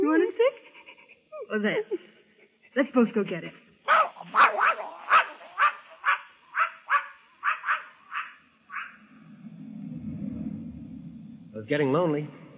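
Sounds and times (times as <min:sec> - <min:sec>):
speech: 0:01.6 - 0:02.1, 0:02.8 - 0:03.6, 0:11.7 - 0:12.4
small dog barking and yipping: 0:03.9 - 0:09.0
low rumbling noise: 0:08.4 - 0:12.5.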